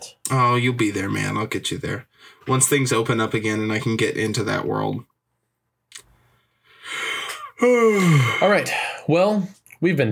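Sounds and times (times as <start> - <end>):
speech: 0.3 - 5.1, 7.6 - 10.1
person yawning: 6.9 - 8.5.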